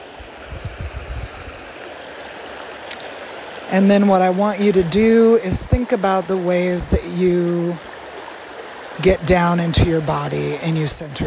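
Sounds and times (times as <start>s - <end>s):
river water lapping and rippling over rocks: 0.0s - 11.2s
soft low thuds: 0.4s - 1.6s
speech: 3.7s - 7.9s, 9.0s - 11.2s.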